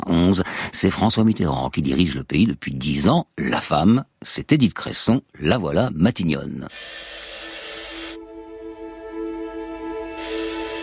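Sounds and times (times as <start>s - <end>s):
speech: 0.1s - 7.3s
electronic telephone ringing in early-1990s France: 6.7s - 8.2s, 10.2s - 10.8s.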